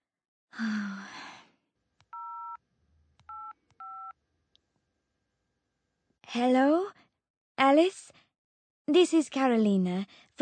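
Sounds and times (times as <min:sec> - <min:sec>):
speech: 0:00.6 - 0:01.0, 0:06.3 - 0:06.9, 0:07.6 - 0:08.2, 0:08.9 - 0:10.4
heavy sigh: 0:00.6 - 0:01.5
phone number dialed with push-button tone beeps and soft clicks: 0:02.1 - 0:02.6, 0:03.3 - 0:04.1.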